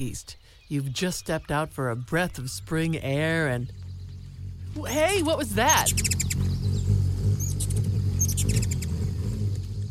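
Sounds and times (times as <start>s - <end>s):
speech: 0.0s - 3.8s, 4.8s - 6.5s
ruby-throated hummingbird low steady wing hum: 2.6s - 9.9s
ruby-throated hummingbird thin high squeaky chirps: 4.7s - 9.1s, 9.8s - 9.9s.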